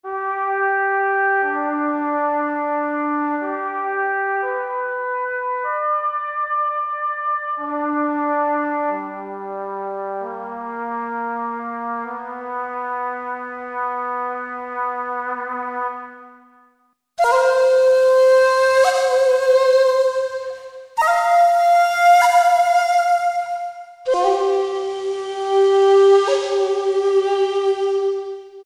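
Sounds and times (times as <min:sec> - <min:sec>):
trumpet: 0:00.0 - 0:28.6
shakuhachi: 0:17.2 - 0:28.6.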